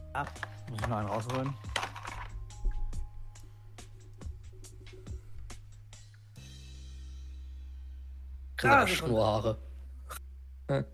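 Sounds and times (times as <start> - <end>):
speech: 0.2 - 1.7, 8.6 - 9.7, 10.7 - 10.9
small four-sided die rolled across a hard surface: 0.3 - 2.4.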